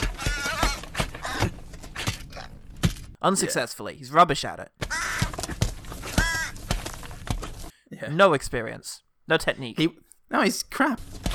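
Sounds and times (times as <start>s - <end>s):
emaciated crow cawing: 0.0s - 2.6s, 4.8s - 6.9s
sharp knocks and scuffling thuds: 0.0s - 3.2s, 4.8s - 7.7s, 11.0s - 11.3s
speech: 3.2s - 4.9s, 8.0s - 11.3s.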